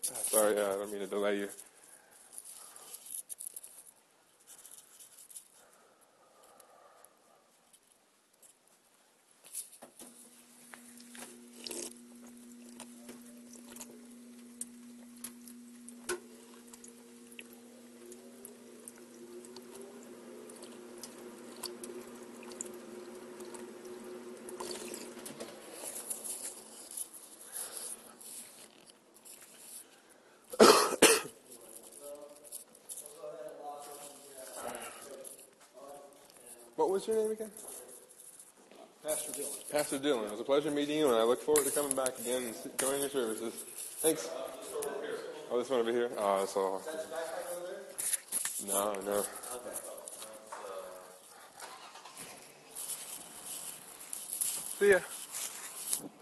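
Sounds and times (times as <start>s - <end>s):
speech: 0.0s - 1.7s, 37.0s - 37.7s, 39.4s - 44.4s, 45.5s - 47.3s, 48.6s - 49.8s, 54.8s - 55.2s
quiet rustling: 0.0s - 30.3s, 31.4s - 56.2s
sipping noises: 10.1s - 28.9s, 49.4s - 56.0s
water pouring: 10.5s - 26.7s
person coughing: 30.5s - 31.4s.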